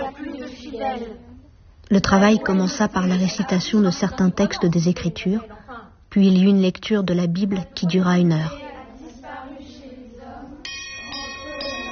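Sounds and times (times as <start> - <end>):
low rumble: 0.0 - 10.7
speech: 0.8 - 1.3, 1.9 - 8.6
school bell ringing: 10.6 - 11.9.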